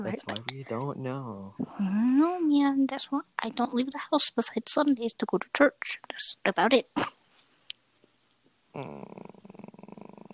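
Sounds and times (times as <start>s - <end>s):
person imitating a cat's purr: 0.0s - 1.4s, 8.8s - 10.3s
speech: 0.0s - 7.2s, 8.8s - 9.4s.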